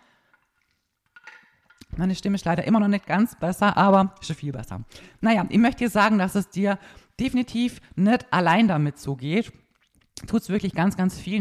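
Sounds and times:
speech: 2.0 - 9.6, 10.2 - 11.3
person sipping water: 9.6 - 10.2
wet slurping and swallowing: 9.6 - 10.2.

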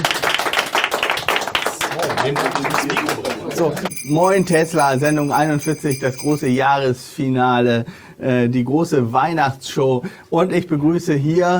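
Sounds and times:
crowd applauding: 0.0 - 4.2
speech: 2.2 - 11.5.

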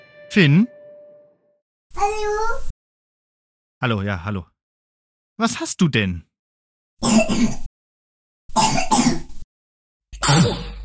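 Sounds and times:
speech: 0.3 - 0.8, 2.0 - 2.7, 3.8 - 4.5, 5.4 - 6.3, 7.0 - 7.7
child coughing harshly from a cold: 7.0 - 7.7, 8.5 - 9.3, 10.2 - 10.8.

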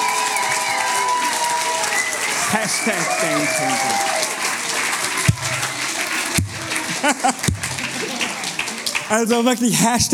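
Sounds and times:
sharp whoops: 0.0 - 4.2
crowd in a youth church clapping and cheering: 0.0 - 10.1
speech: 2.5 - 4.2, 7.0 - 7.5, 9.1 - 10.1
laughter: 5.6 - 8.7.

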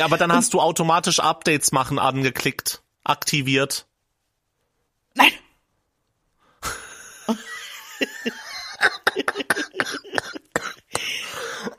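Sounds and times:
laughter: 0.0 - 0.5, 6.7 - 11.7
speech: 0.0 - 3.9, 5.2 - 5.4, 6.6 - 10.0
person coughing: 8.9 - 11.7.

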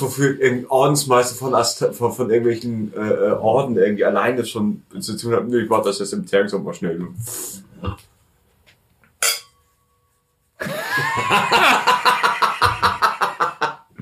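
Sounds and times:
speech: 0.0 - 8.1
glasses clinking in a toast: 9.2 - 9.6
lively rhythmic laughter: 10.6 - 13.9.

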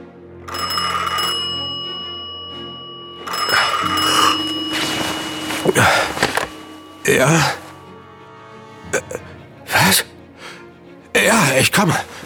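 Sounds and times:
old-fashioned telephone bell ringing: 0.5 - 9.0
speech: 5.7 - 6.0, 7.1 - 7.6, 11.8 - 12.1.

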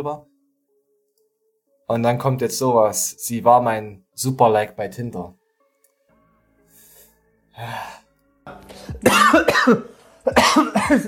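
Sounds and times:
speech: 0.0 - 0.3, 1.9 - 5.4, 7.6 - 11.0
person coughing hard: 9.0 - 11.0.

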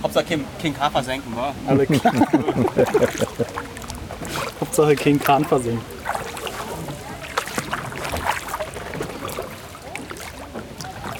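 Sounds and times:
speech: 0.0 - 6.0
soft splashes of a wooden punt boat in the Spreewald: 0.0 - 11.1
laughter: 1.7 - 3.7.

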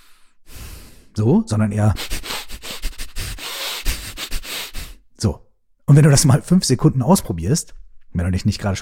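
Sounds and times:
person breathing rapidly and chaotically in and out through the nose: 0.0 - 1.2, 2.0 - 5.0
speech: 1.2 - 2.1, 5.2 - 8.8.

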